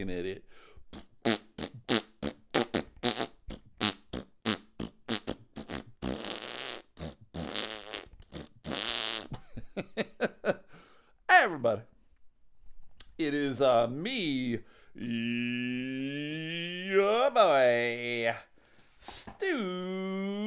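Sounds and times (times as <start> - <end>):
speech: 0.0 - 1.4, 11.6 - 11.9, 13.2 - 20.4
fart noises: 0.9 - 9.6.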